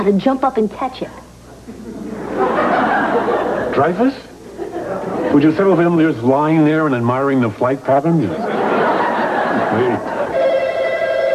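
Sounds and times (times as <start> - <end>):
speech: 0.0 - 1.3, 3.2 - 4.2, 5.3 - 8.6, 9.8 - 10.2
laughter: 1.6 - 6.1, 8.2 - 10.7
telephone ringing: 10.3 - 11.3.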